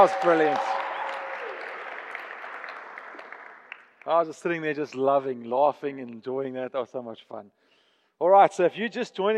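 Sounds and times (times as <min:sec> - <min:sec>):
speech: 0:00.0 - 0:00.7, 0:04.1 - 0:07.6, 0:08.2 - 0:09.3
room full of people applauding: 0:00.0 - 0:05.1.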